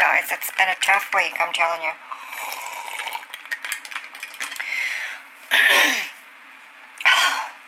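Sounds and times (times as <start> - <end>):
speech: 0.3 - 2.1
loud harsh coughs: 5.5 - 6.2.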